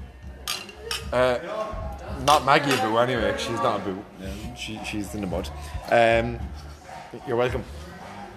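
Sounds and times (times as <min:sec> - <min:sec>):
glasses clinking in a toast: 0:00.4 - 0:01.7, 0:02.3 - 0:03.3
speech: 0:01.1 - 0:07.8.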